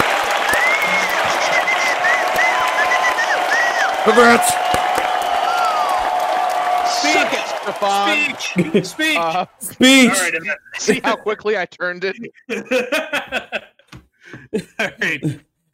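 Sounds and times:
laughter: 0.0 - 4.6, 6.8 - 15.4
applause: 0.0 - 10.3
cheers and whistles: 0.0 - 10.8
speech: 4.1 - 4.6, 7.3 - 13.7, 14.3 - 15.5.

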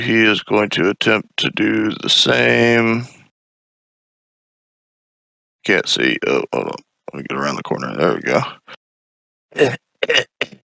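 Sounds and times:
speech: 0.0 - 3.2, 5.6 - 8.8, 9.5 - 10.6
person coughing: 9.6 - 10.6.

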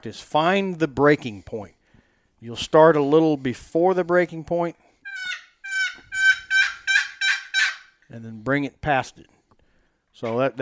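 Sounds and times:
speech: 0.0 - 1.8, 2.4 - 4.8, 8.1 - 9.4, 10.2 - 10.5
turkey yelps on a hand-operated turkey call: 5.0 - 8.0.

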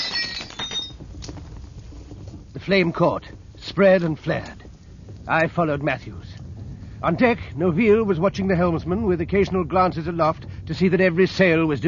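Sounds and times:
glass oil lamp smashing: 0.0 - 1.0
glass shards tinkling and clattering as they settle: 0.0 - 1.0
speech: 2.6 - 4.6, 5.3 - 6.3, 7.0 - 11.8.

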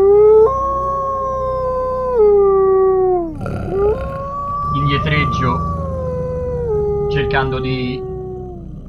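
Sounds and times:
pack of dogs howling: 0.0 - 8.8
speech: 7.2 - 8.1.

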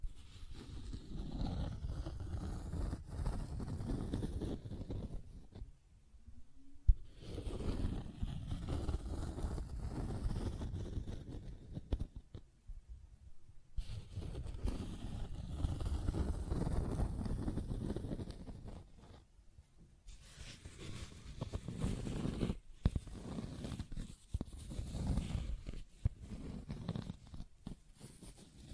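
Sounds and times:
dry scratching and tracing: 0.0 - 5.7, 7.0 - 12.4, 13.8 - 19.3, 20.1 - 28.7.

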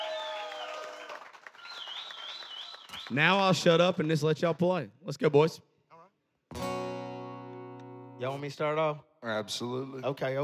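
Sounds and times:
crowd applauding: 0.0 - 3.7
sharp whistles from the crowd: 1.6 - 3.3
speech: 3.1 - 5.7, 8.2 - 10.4.

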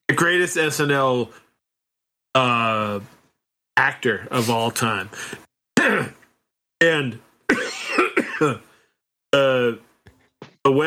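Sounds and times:
speech: 0.2 - 1.4, 2.3 - 3.2, 3.8 - 6.1, 6.8 - 7.3, 8.4 - 8.7, 10.7 - 10.8
person coughing: 5.8 - 6.2, 7.5 - 8.7.

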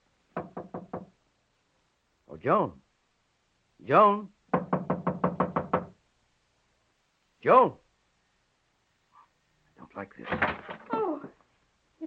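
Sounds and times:
firm knocking on a wooden study door: 0.3 - 1.2, 4.5 - 6.0
speech: 2.4 - 2.8, 3.8 - 4.4, 7.4 - 7.8, 10.0 - 10.5.

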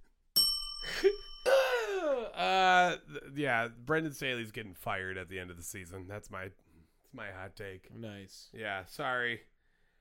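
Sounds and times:
small bell being struck: 0.4 - 2.1
speech: 2.4 - 9.5.

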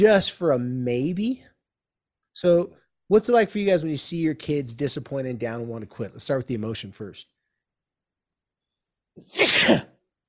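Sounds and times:
speech: 0.0 - 1.5, 2.4 - 7.4, 9.2 - 9.9
sneeze: 9.2 - 10.0.

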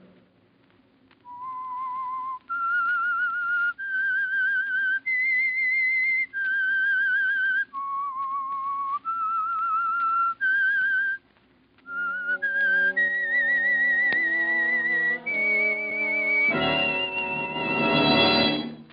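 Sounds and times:
lone clear whistled melody: 1.3 - 11.2, 11.9 - 18.9
fuller instruments playing the theme: 11.9 - 18.9.

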